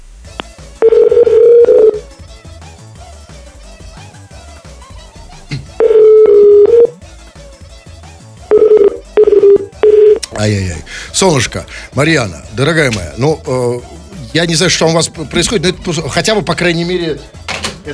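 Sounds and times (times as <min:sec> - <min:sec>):
telephone line tone after a dropped call: 0:00.8 - 0:02.0, 0:05.8 - 0:07.0, 0:08.5 - 0:10.2
speech: 0:10.4 - 0:17.9.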